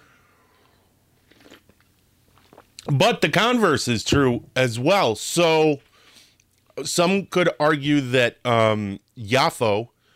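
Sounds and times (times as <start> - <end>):
person slurping coffee: 0.4 - 2.9
small gulps: 0.5 - 2.9
speech: 2.8 - 5.9, 6.8 - 9.9.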